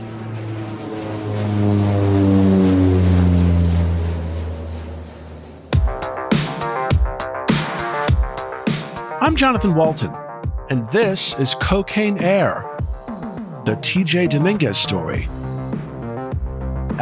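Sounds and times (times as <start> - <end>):
propeller airplane engine droning past: 0.0 - 17.0
speech: 9.4 - 12.7, 13.6 - 15.4.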